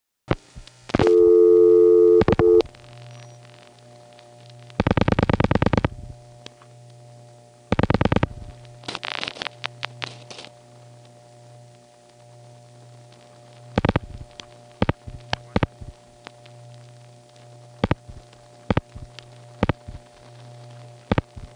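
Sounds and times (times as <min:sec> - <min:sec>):
static hum on a telephone line: 0:00.0 - 0:21.5
telephone line ringing: 0:01.0 - 0:02.6.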